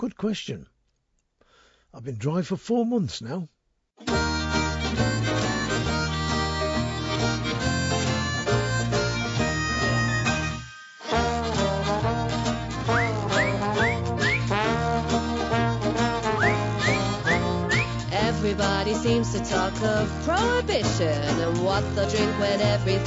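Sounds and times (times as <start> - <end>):
speech: 0.0 - 0.7, 1.9 - 4.3, 18.4 - 23.0
lively jug band music: 4.0 - 23.0
sliding whistle-like notes: 4.1 - 11.1, 12.8 - 14.7, 16.2 - 18.1.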